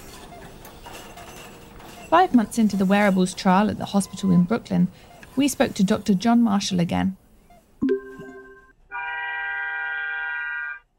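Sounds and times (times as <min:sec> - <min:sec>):
speech: 0:02.1 - 0:07.2
horn blasts outdoors: 0:08.9 - 0:10.3.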